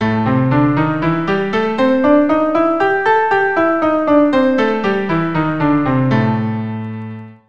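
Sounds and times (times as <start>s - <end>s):
keyboard playing A blues over two octaves: 0.0s - 7.4s.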